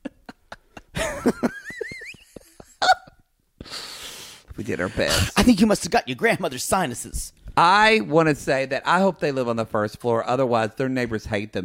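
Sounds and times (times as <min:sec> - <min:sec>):
laughter: 0:00.0 - 0:03.1
speech: 0:01.2 - 0:01.6, 0:04.6 - 0:11.6
harsh coughs: 0:04.9 - 0:05.5.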